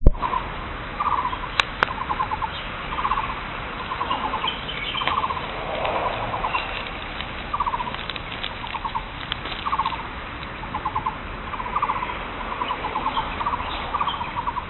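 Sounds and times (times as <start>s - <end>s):
bird giving short rapid pulsed trills: 0.2s - 10.0s, 10.7s - 14.6s.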